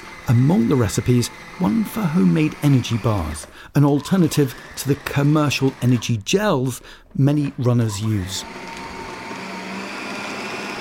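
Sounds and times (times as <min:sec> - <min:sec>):
blender blending dates, almonds, oats, nut butter and cacao: 0:00.0 - 0:06.2, 0:06.8 - 0:10.8
speech: 0:00.3 - 0:08.8.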